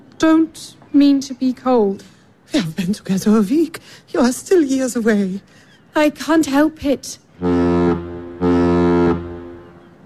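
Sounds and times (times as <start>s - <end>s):
speech: 0.2s - 7.6s
boat horn blasts of a vessel about to leave: 7.4s - 10.0s.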